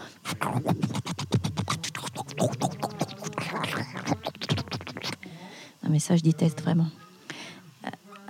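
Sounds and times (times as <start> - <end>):
voice imitating toothbrushing: 0.0 - 5.3
speech: 0.4 - 1.1, 5.9 - 7.0.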